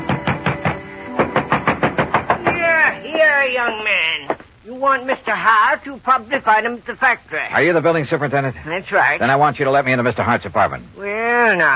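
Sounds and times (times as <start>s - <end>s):
heavy pounding on an apartment door: 0.0s - 2.7s
speech: 3.4s - 11.7s.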